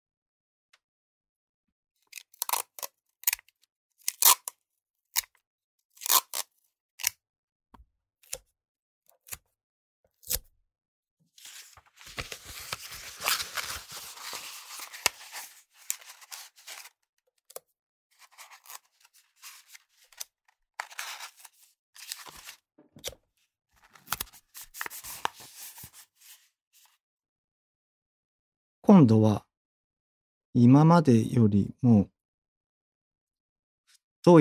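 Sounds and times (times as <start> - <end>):
tape pulled off a roll and torn: 2.1 - 4.6, 6.0 - 7.2, 11.6 - 16.9, 18.2 - 23.2, 23.8 - 25.4
speech: 28.9 - 29.4, 30.6 - 32.1.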